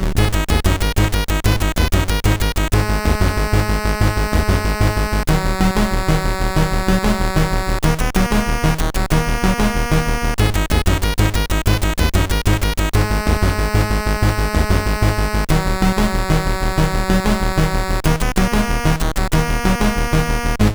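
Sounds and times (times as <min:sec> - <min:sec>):
SID CSG8580R5 sound chip tone: 0:00.2 - 0:20.7.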